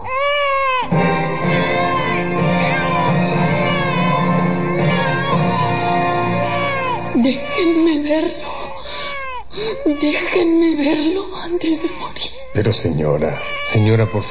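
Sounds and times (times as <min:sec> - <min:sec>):
newborn baby crying just after birth: 0:00.0 - 0:14.3
speech: 0:10.0 - 0:14.3.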